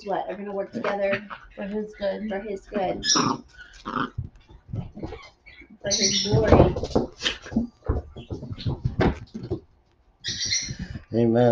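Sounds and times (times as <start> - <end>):
speech: 0.0 - 7.8, 11.1 - 11.5
birds chirping indoors: 0.0 - 9.6, 10.2 - 11.5.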